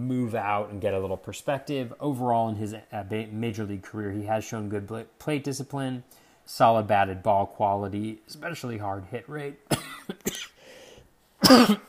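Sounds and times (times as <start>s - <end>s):
speech: 0.1s - 10.5s, 11.5s - 11.8s
person coughing: 9.7s - 10.6s, 11.4s - 11.8s
faint rasp of breath: 10.6s - 11.1s.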